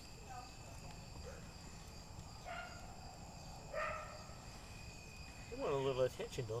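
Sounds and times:
crickets chirping: 0.0 - 6.5
dogs barking: 2.4 - 3.0, 3.7 - 4.3
speech: 5.6 - 6.5.

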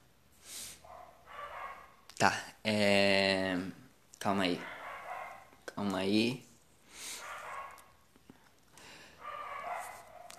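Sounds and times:
dog barking: 0.8 - 2.1, 4.4 - 5.6, 7.1 - 8.0, 9.1 - 10.3
speech: 2.2 - 3.2, 4.2 - 4.7, 5.9 - 6.5.

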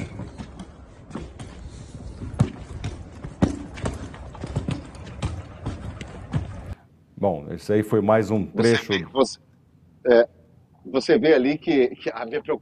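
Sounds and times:
suitcase wheels rattling over rough pavement: 0.0 - 6.8
speech: 7.2 - 12.6.

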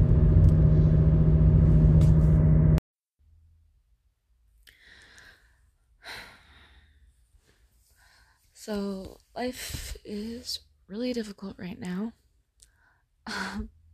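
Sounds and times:
car interior rumble while driving: 0.0 - 2.8
faint breaths: 4.7 - 8.6
speech: 8.7 - 12.2, 13.3 - 13.8.

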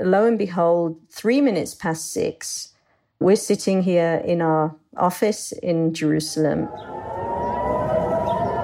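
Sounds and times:
speech: 0.0 - 7.3
air-raid siren wailing as an incoming rocket warning in Jerusalem: 6.5 - 8.6.

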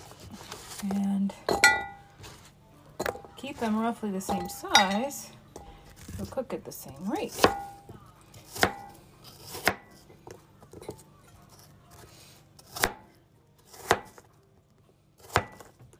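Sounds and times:
speech: 0.8 - 1.4, 3.4 - 5.4, 6.2 - 7.7
knife chopping peeled food into pieces: 7.2 - 10.1, 12.6 - 14.3, 15.2 - 15.9.

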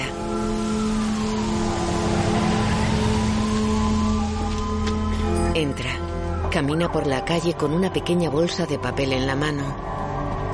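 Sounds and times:
bus engine droning as it pulls away on a street at dusk: 0.0 - 5.5
continuous broadband traffic noise: 0.3 - 5.3
speech: 5.6 - 10.0.

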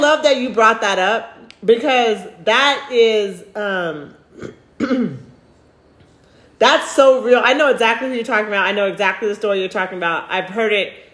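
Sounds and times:
speech: 0.1 - 5.2, 6.6 - 11.0
raspy throat clearing: 4.3 - 5.4.

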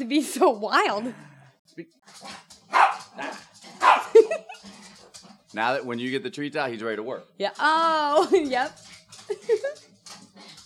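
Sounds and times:
speech: 0.0 - 3.4, 5.5 - 9.8
dog barking loudly with sharp raspy barks: 2.7 - 4.2.

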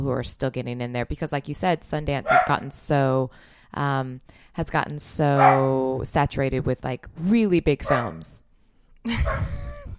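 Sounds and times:
speech: 0.0 - 8.4, 9.0 - 9.7
female pet dog bark-like whining yelp: 2.3 - 2.6, 5.4 - 5.7, 7.8 - 8.2.

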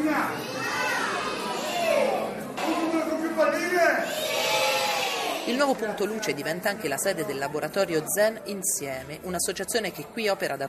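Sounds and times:
crowd of children chattering and shouting indoors at a juggling show: 0.0 - 3.2, 4.0 - 5.5
speech: 5.5 - 10.6.

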